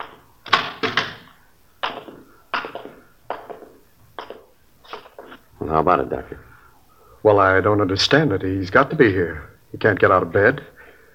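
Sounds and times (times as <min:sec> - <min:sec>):
hospital room door being forced open: 0:00.0 - 0:01.4
loud wooden thumps and rattles of a door: 0:00.0 - 0:05.4
speech: 0:05.7 - 0:06.5, 0:07.2 - 0:10.7.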